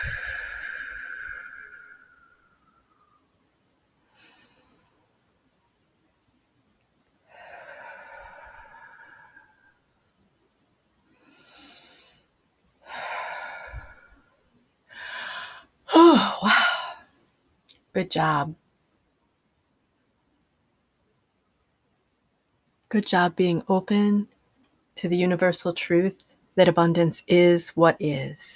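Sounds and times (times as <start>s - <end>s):
slow deep breaths during a guided meditation: 0.0s - 5.4s, 7.2s - 10.1s, 11.0s - 17.2s
speech: 18.0s - 18.6s, 22.9s - 24.3s, 25.0s - 28.5s.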